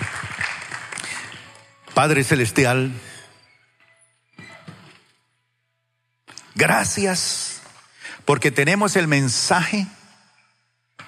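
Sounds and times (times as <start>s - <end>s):
audience applause: 0.0s - 1.6s
speech: 2.0s - 3.1s, 6.6s - 7.6s, 8.2s - 10.0s.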